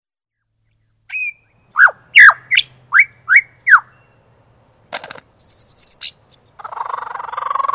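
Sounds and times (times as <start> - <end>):
superb lyrebird song with down-slurred whistles, rattle, trill and buzzy phrase: 0.3 - 7.7.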